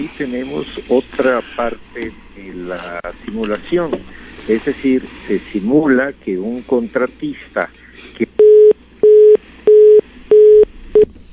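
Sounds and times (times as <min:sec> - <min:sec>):
speech: 0:00.0 - 0:08.3
telephone busy tone after a dropped call: 0:08.4 - 0:11.1.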